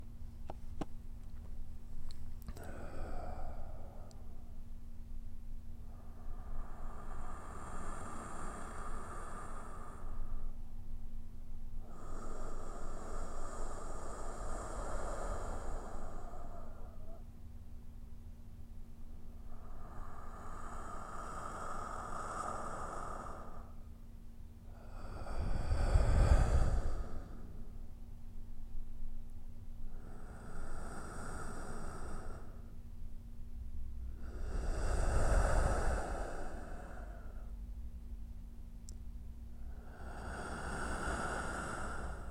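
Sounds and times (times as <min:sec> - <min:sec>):
person breathing: 0:01.7 - 0:04.8, 0:05.8 - 0:10.8, 0:11.6 - 0:18.2, 0:18.9 - 0:28.8, 0:29.7 - 0:33.0, 0:33.8 - 0:38.0, 0:39.4 - 0:42.3.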